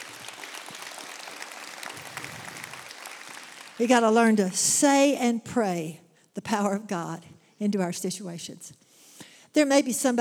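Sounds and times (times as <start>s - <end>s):
audience applause: 0.0s - 4.0s
speech: 3.8s - 8.8s, 9.5s - 10.1s.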